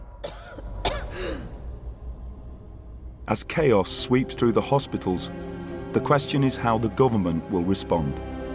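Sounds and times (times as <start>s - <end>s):
woman coughing up blood: 0.2s - 1.5s
speech: 3.3s - 8.3s.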